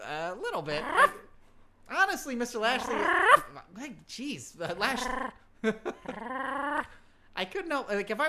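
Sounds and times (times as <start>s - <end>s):
speech: 0.4s - 1.3s, 1.9s - 8.2s
man imitating a dog's barks and yelping whines: 0.6s - 1.3s, 2.6s - 3.6s, 4.7s - 5.4s.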